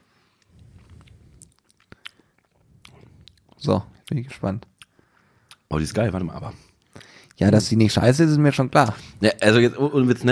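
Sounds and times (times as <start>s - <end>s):
chewing and biting while tasting food: 0.6s - 4.9s
speech: 3.6s - 4.7s, 5.7s - 6.7s, 7.4s - 10.3s.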